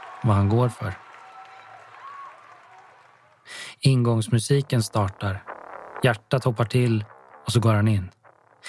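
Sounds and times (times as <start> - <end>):
shouts and whistles from the crowd: 0.0 - 3.4
large indoor arena crowd cheering and applauding: 0.0 - 3.5
speech: 0.2 - 1.1, 3.8 - 8.6.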